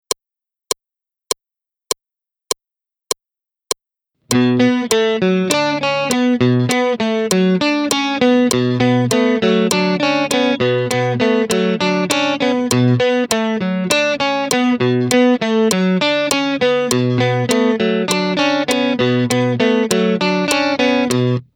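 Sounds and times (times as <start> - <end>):
guitar: 4.3 - 21.5.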